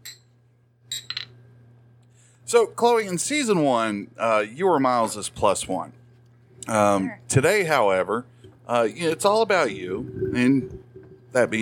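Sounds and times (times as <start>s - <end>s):
low steady hum: 0.0s - 11.6s
shot glasses clinking in a toast: 0.9s - 1.4s
speech: 2.5s - 6.0s, 6.6s - 11.6s.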